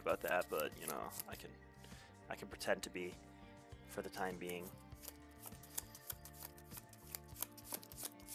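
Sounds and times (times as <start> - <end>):
cards being shuffled by hand: 0.0 - 1.4, 4.2 - 8.3
speech: 0.0 - 1.7, 2.3 - 3.3, 3.9 - 5.1
quiet music: 0.0 - 8.3.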